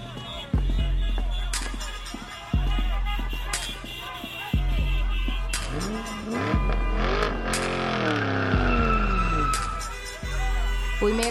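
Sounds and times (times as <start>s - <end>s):
car engines roaring and revving: 0.0s - 11.2s
car tires screeching in sharp skids: 0.0s - 11.2s
speech: 11.0s - 11.2s.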